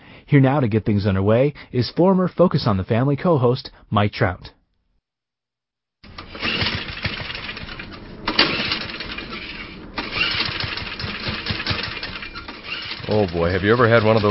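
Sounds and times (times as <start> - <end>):
speech: 0.3 - 4.6, 13.1 - 14.2
lawnmower engine sputtering while trying to start: 6.0 - 14.2
lawnmower pull-cord bursts: 6.0 - 14.2.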